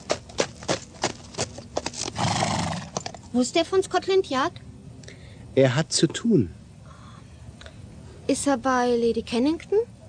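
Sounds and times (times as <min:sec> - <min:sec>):
pony hooves clip-clopping at a walking pace as it is ridden: 0:00.0 - 0:03.3
speech: 0:03.3 - 0:04.7, 0:05.6 - 0:06.6, 0:08.3 - 0:10.0.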